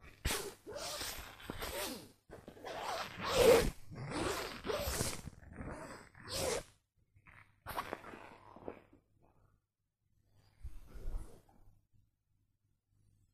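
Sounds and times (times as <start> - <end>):
nylon being rubbed: 0.1 - 6.7, 7.3 - 9.0.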